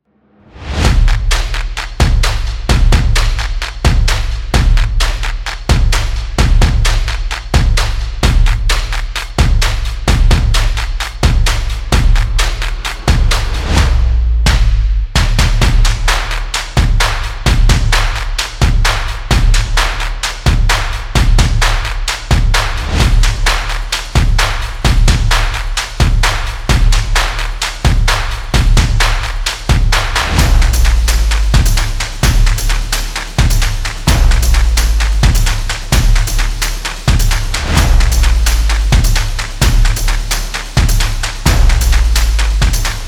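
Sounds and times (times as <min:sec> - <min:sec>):
energetic opener percussion music: 0:00.6 - 0:43.0.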